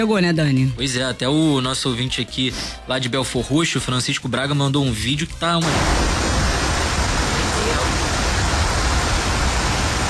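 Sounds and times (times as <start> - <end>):
speech: 0.0 - 6.2
heavy rain pouring down: 5.6 - 10.0.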